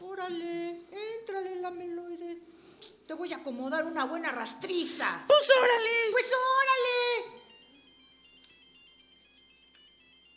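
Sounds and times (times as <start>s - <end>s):
speech: 0.2s - 0.6s, 3.1s - 6.8s
telephone ringing with a faint electronic ringtone: 7.4s - 10.3s.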